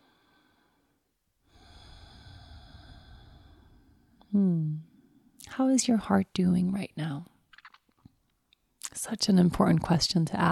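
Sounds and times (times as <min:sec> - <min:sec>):
slow breathing in and out through nose: 0:00.0 - 0:04.3
speech: 0:05.6 - 0:07.3, 0:09.0 - 0:10.5.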